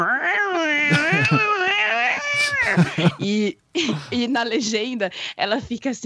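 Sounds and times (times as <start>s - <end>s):
person vocally imitating an angry cat's yowling: 0.0s - 3.4s
laughter: 0.9s - 4.3s
speech: 2.7s - 6.0s.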